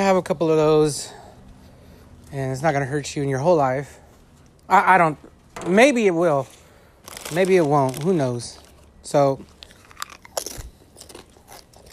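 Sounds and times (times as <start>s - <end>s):
speech: 0.0s - 1.2s, 2.3s - 4.0s, 4.7s - 6.6s, 7.3s - 9.5s
crunching of a chip being eaten: 7.0s - 11.9s.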